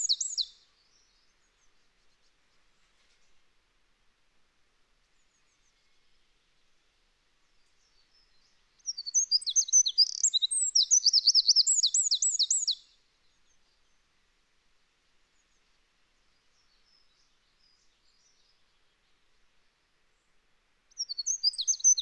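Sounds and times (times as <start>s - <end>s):
Eurasian wren Troglodytes troglodytes song: 0.0s - 0.6s, 8.3s - 12.9s, 20.9s - 22.0s.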